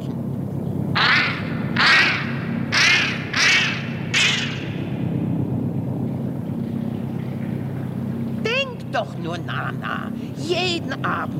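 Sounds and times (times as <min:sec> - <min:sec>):
low rumbling background: 0:00.0 - 0:11.3
geese honking: 0:01.0 - 0:04.9
speech: 0:09.0 - 0:11.3.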